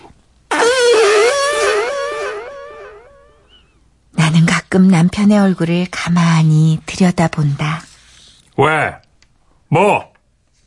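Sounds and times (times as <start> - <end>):
fart sound effect with buzzy wobbling pitch: 0.5 - 3.4
speech: 4.7 - 7.8, 8.6 - 9.0, 9.7 - 10.1.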